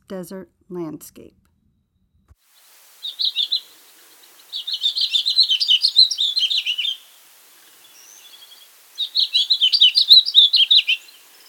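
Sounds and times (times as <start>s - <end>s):
speech: 0.1s - 1.4s
house finch singing: 3.0s - 11.4s.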